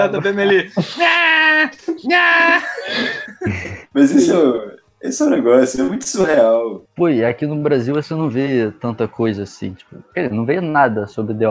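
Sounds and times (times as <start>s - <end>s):
laughter: 0.0s - 4.1s
speech: 0.0s - 11.4s
voice imitating a crying baby: 0.9s - 3.4s.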